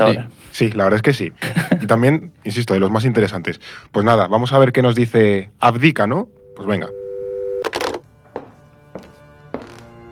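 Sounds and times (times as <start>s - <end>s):
speech: 0.0s - 7.0s
laughter: 1.4s - 2.2s
steady telephone tone: 6.2s - 7.6s
telephone busy signal beeping: 6.3s - 7.6s
telephone handset hung up: 7.6s - 8.0s.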